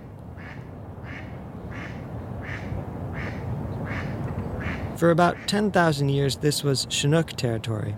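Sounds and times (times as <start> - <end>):
ducks quacking at a pond: 0.4 - 5.6
speech: 5.0 - 7.9.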